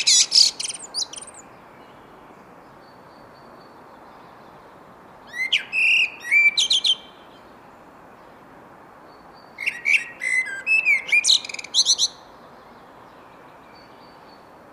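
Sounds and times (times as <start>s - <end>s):
Common blackbird singing, Turdus merula: 0.0s - 1.5s, 5.3s - 7.2s, 9.6s - 12.2s.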